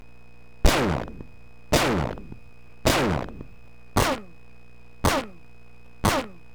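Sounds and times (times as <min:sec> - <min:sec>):
bright distorted tom on Simmons electronic drums: 0:00.7 - 0:04.3, 0:05.1 - 0:05.4, 0:06.0 - 0:06.4.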